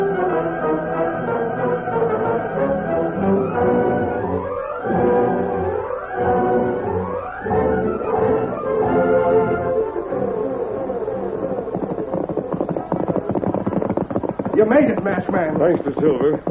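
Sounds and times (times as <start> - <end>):
white horse's galloping hooves: 0.0 - 16.4
dense sustained layer of music or voices: 10.7 - 16.4
speech: 15.6 - 16.4.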